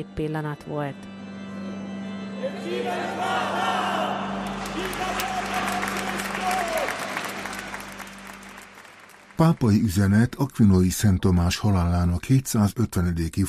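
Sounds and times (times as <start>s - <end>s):
speech: 0.0s - 1.1s, 2.4s - 3.9s, 9.4s - 13.4s
crowd of parishioners applauding outdoors in a church square: 2.9s - 10.4s.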